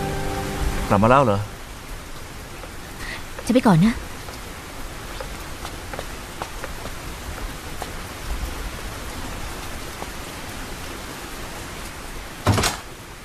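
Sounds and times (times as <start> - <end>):
heavy rain falling: 0.0 - 13.2
speech: 0.9 - 1.5, 3.5 - 4.0
water drips and taps: 2.1 - 10.5.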